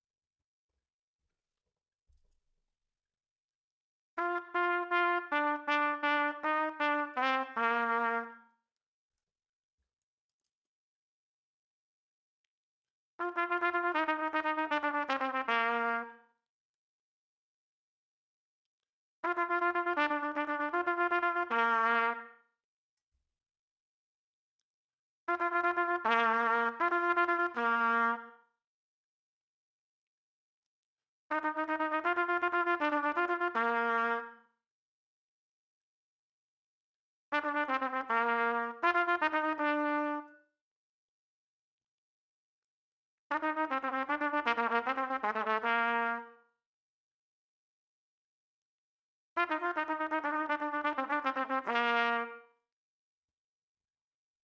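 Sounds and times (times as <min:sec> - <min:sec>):
trumpet playing: 0:04.2 - 0:08.5, 0:13.2 - 0:16.2, 0:19.2 - 0:22.4, 0:25.3 - 0:28.4, 0:31.3 - 0:34.4, 0:37.3 - 0:40.4, 0:43.3 - 0:46.4, 0:49.4 - 0:52.5.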